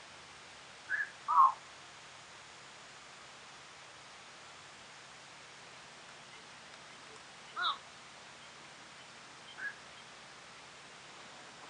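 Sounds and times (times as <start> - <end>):
background hiss: 0.0 - 11.6
Eurasian bittern Botaurus stellaris calls: 0.9 - 1.6, 6.1 - 10.7.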